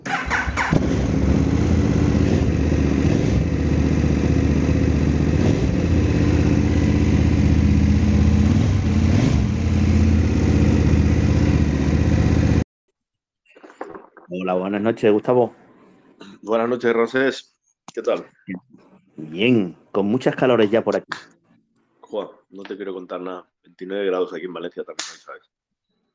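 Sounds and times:
motorcycle engine starting and idling: 0.0s - 12.6s
speech: 14.6s - 15.6s, 16.4s - 21.3s, 22.1s - 25.6s.

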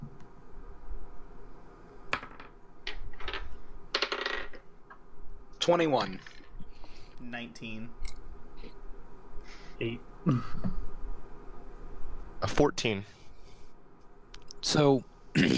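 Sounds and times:
dice rolling for tabletop role-playing game insight checks: 2.1s - 5.0s, 6.0s - 6.6s
people talking: 5.6s - 6.2s, 7.2s - 8.0s, 9.8s - 10.5s, 12.4s - 13.1s, 14.6s - 15.5s.

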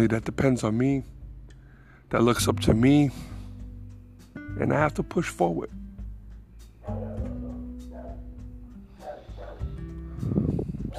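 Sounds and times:
speech: 0.0s - 1.2s, 2.1s - 3.3s, 4.6s - 5.8s
dog barking and whimpering at a dog across the street: 6.8s - 9.8s.

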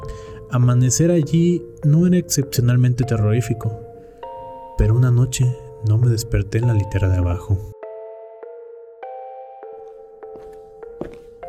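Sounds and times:
speech: 0.5s - 3.8s, 4.8s - 7.7s
footsteps walking: 9.8s - 11.4s.

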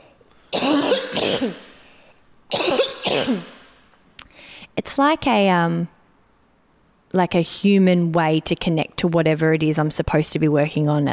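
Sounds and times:
person coughing: 0.0s - 1.8s, 2.5s - 3.8s
speech: 1.1s - 1.7s, 3.2s - 3.5s, 5.0s - 6.0s, 7.1s - 11.1s.

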